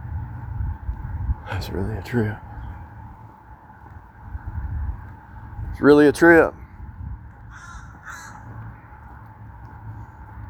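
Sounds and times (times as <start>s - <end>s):
steady low outdoor rumble: 0.0s - 10.4s
speech: 1.5s - 2.5s, 5.8s - 6.6s
crow cawing: 7.5s - 8.7s.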